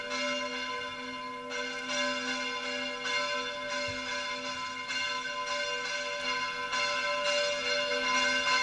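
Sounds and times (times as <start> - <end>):
church bells ringing in a steady peal: 0.0 - 8.6.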